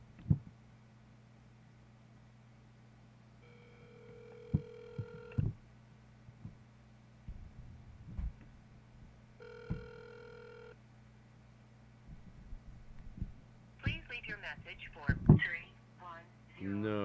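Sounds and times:
low constant hum: 0:00.0 - 0:17.0
outgoing phone call ringing tone: 0:03.4 - 0:05.4, 0:09.4 - 0:10.8
speech: 0:14.4 - 0:15.7, 0:16.6 - 0:17.0.

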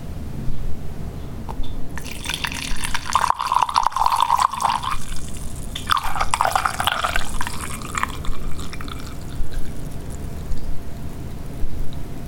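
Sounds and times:
liquid poured into a glass decanter: 0:02.0 - 0:11.6.

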